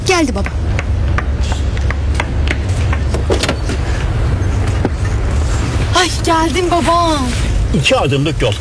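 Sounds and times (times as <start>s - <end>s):
speech: 0.2s - 0.7s, 6.3s - 8.5s
just-started car engine idling: 1.9s - 7.1s.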